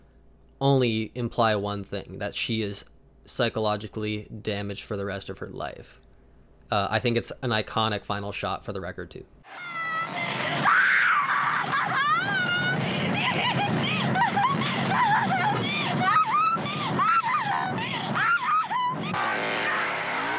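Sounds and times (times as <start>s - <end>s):
speech: 0.6s - 6.0s, 6.7s - 9.6s
woman screaming and laughing: 9.5s - 20.3s.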